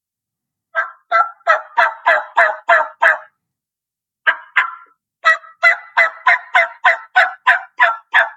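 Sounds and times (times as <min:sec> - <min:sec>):
hen turkey call yelps made on a mouth call using jaw action: 0:00.8 - 0:03.3, 0:04.3 - 0:08.3.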